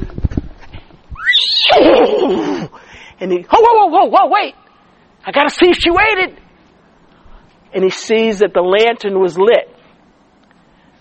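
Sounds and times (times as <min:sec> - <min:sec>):
horse neighing: 0:01.2 - 0:02.5
speech: 0:01.8 - 0:02.6, 0:03.2 - 0:04.6, 0:05.2 - 0:06.4, 0:07.7 - 0:09.7.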